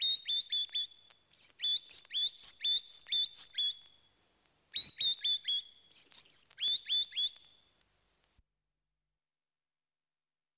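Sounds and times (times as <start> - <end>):
bird singing high clear whistles: 0.0 - 4.0, 4.7 - 7.7.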